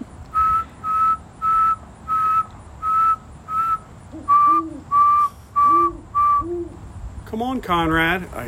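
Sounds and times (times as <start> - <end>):
person whistling a steady same-pitched note in short blasts: 0.3 - 6.7
speech: 7.4 - 8.4.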